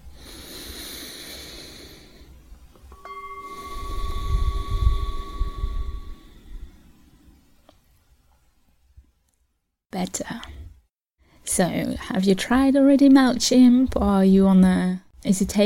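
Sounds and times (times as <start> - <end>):
person taking a slow deep breath in and out: 0.0 - 2.4, 3.1 - 7.1
faint sustained tone: 2.9 - 7.5
speech: 10.0 - 10.5, 11.5 - 15.6.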